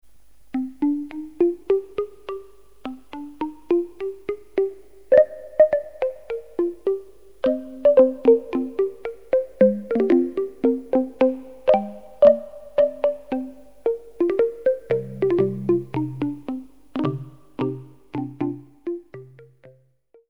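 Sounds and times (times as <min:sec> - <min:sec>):
wooden synth tone from polyphonic Korg synth: 0:00.5 - 0:19.9.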